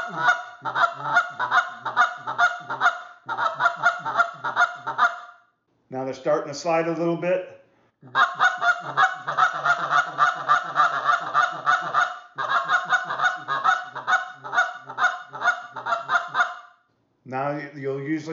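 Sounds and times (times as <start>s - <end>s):
handheld goose call imitating the low ground murmur of adult geese: 0.0s - 5.3s, 8.1s - 16.7s
speech: 0.1s - 2.0s, 6.2s - 8.2s.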